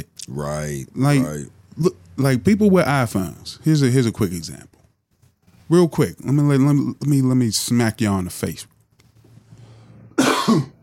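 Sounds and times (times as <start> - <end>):
speech: 0.3 - 4.7, 5.7 - 8.7, 10.5 - 10.7
person coughing: 10.2 - 10.8
throat clearing: 10.2 - 10.8.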